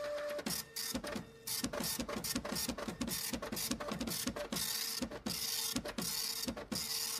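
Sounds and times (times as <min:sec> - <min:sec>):
teleprinter printing incoming news: 0:00.1 - 0:07.1.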